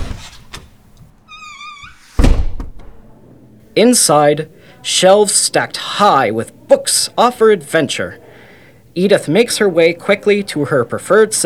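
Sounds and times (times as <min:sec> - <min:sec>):
library door hinges creaking and squealing: 0:00.0 - 0:02.8
speech: 0:03.8 - 0:08.2, 0:09.0 - 0:11.4.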